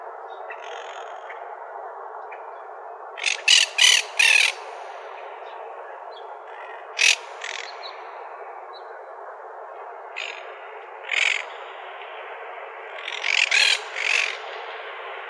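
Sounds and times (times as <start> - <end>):
monk parakeet squawks: 3.2 - 4.6, 7.0 - 7.7, 11.0 - 11.5, 13.0 - 14.4.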